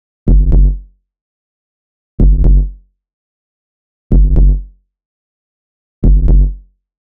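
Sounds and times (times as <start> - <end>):
bass line at 125 bpm: 0.3 - 0.8, 2.2 - 2.8, 4.1 - 4.7, 6.0 - 6.6.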